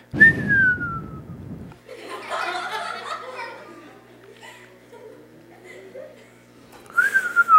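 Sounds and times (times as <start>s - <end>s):
person whistling a falling tone: 0.2s - 1.4s, 6.9s - 7.5s
people chuckling: 1.8s - 6.5s.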